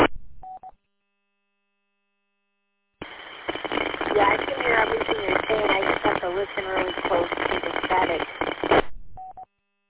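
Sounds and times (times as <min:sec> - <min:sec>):
narrowband radio transmission static and crackle: 0:00.0 - 0:00.3, 0:03.0 - 0:09.2
garbled voice over narrowband radio: 0:04.0 - 0:08.3.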